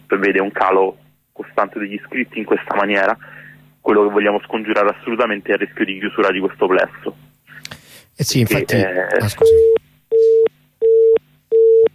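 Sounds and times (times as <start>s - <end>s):
speech: 0.1s - 9.7s
busy-signal beeps after a dropped phone call: 9.4s - 11.9s.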